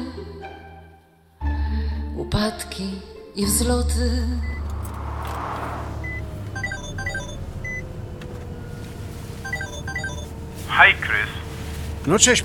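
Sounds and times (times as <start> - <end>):
speech: 2.4 - 4.6, 12.0 - 12.4
truck engine droning on the road: 3.4 - 12.4
high electronic beeping tones: 6.0 - 7.8, 9.4 - 10.3.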